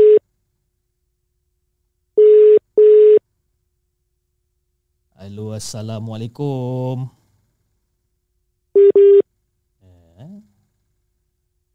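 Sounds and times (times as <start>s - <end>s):
ringback tone of an outgoing phone call not yet answered: 0.0s - 0.2s, 2.2s - 3.2s, 8.8s - 9.2s
speech: 5.6s - 7.2s.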